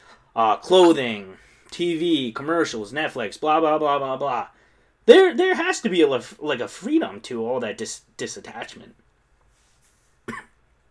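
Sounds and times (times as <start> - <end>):
speech: 0.4 - 9.0
person coughing: 10.2 - 10.6.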